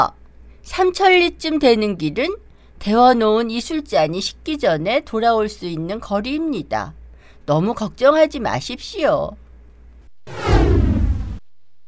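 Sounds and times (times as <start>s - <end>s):
speech: 0.0s - 9.4s, 10.3s - 10.7s
loud broadband whoosh of sudden vanishing: 10.2s - 11.5s.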